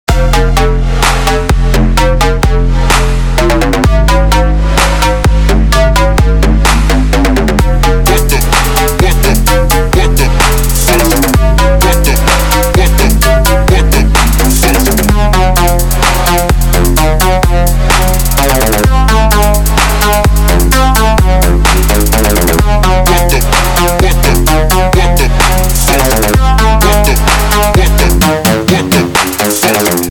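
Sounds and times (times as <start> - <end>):
EDM trap music: 0.1 - 30.0.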